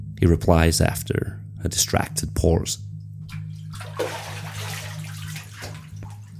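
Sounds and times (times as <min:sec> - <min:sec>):
speech: 0:00.2 - 0:02.9, 0:04.0 - 0:04.3
bathtub filling with running water: 0:03.4 - 0:06.3.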